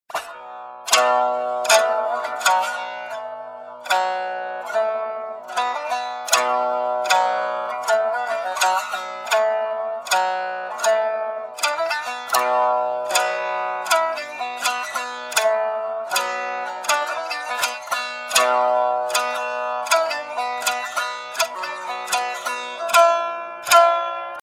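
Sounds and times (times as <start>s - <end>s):
shamisen: 0.1s - 24.4s.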